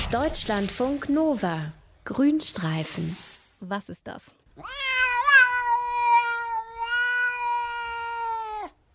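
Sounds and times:
speech: 0:00.1 - 0:04.9
cat meowing: 0:04.6 - 0:08.7.

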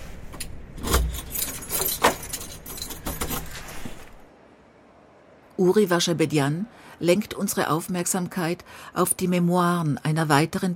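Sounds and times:
keys jangling while fumbling with a lock: 0:00.4 - 0:03.9
speech: 0:05.6 - 0:10.7.

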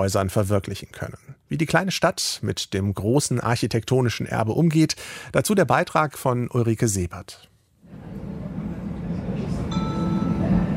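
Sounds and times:
speech: 0:00.0 - 0:07.5
low rumble of a train interior: 0:08.0 - 0:10.7.

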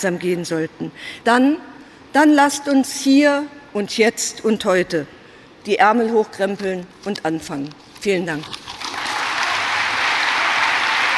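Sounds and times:
speech: 0:00.0 - 0:08.7
delegates applauding at a party congress: 0:08.8 - 0:11.1.

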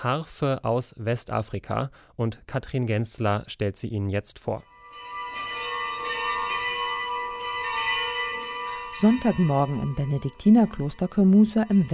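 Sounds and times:
speech: 0:00.0 - 0:05.5, 0:09.0 - 0:11.9
monastery church bells ringing for Sunday mass in Senegal: 0:04.6 - 0:11.9.

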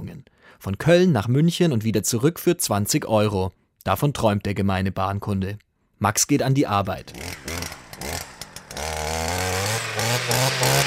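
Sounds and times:
speech: 0:00.6 - 0:07.5
brush cutter saw blade cutting through shrub branches: 0:07.0 - 0:10.8.

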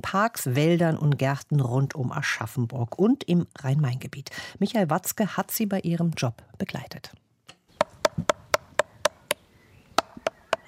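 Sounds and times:
speech: 0:00.0 - 0:07.2
soft-faced hammer knocking on a tree trunk: 0:07.8 - 0:09.4, 0:10.0 - 0:10.6.

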